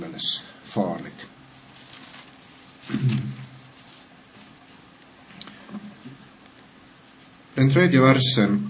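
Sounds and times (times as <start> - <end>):
speech: 0.2 - 1.1, 7.6 - 8.6
pages being turned: 1.6 - 4.8.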